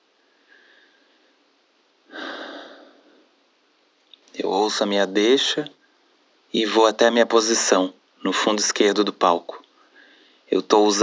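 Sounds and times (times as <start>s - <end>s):
quiet hiss: 0.0s - 11.0s
faint inhale: 0.2s - 1.5s, 2.1s - 3.4s, 9.8s - 10.5s
slow controlled breath taken to calm down before going on stage in a theatre: 0.2s - 1.5s, 2.1s - 3.4s, 9.7s - 10.5s
speech: 4.5s - 5.8s, 6.5s - 9.6s, 10.5s - 11.0s.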